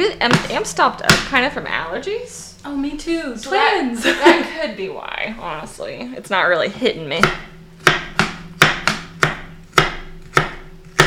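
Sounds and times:
speech: 0.0 - 7.5
laughter: 3.9 - 4.8
knife chopping food on a board in a kitchen: 7.2 - 11.0.

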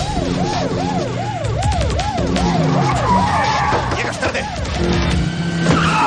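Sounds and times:
loud engine and road noise: 0.0 - 6.0
siren wailing in a rapid rise-and-fall: 0.0 - 6.0
car braking hard with tires skidding and squealing: 2.4 - 6.0.

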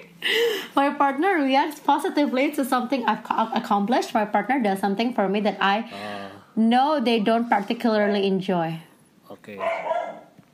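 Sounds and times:
speech: 0.2 - 9.9
dog barking: 9.6 - 10.4.

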